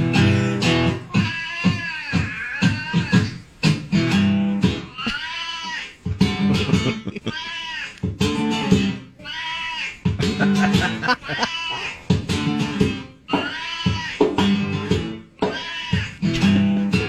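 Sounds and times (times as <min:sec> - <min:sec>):
electric blues guitar: 0:00.0 - 0:05.2, 0:06.0 - 0:07.3, 0:08.0 - 0:09.2, 0:10.0 - 0:17.0
cat meowing: 0:01.1 - 0:03.4, 0:05.0 - 0:06.0, 0:07.3 - 0:08.0, 0:09.2 - 0:10.0, 0:11.2 - 0:12.0, 0:13.3 - 0:14.2, 0:15.5 - 0:16.2
laughter: 0:06.3 - 0:07.5, 0:10.2 - 0:12.0.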